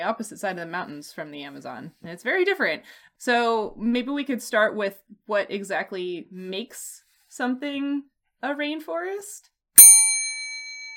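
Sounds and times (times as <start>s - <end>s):
speech: 0.0s - 9.5s
small bell struck and ringing: 9.8s - 10.9s.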